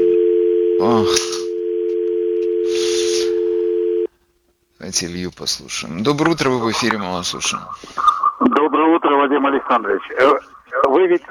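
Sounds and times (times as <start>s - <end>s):
telephone line tone of an incoming call: 0.0s - 4.1s
speech: 0.8s - 1.4s, 4.8s - 11.2s.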